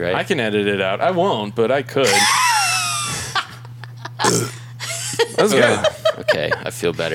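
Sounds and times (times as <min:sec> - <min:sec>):
speech: 0:00.0 - 0:02.4, 0:05.4 - 0:07.1
laughter: 0:02.1 - 0:07.1
long low droning burp: 0:04.2 - 0:04.6.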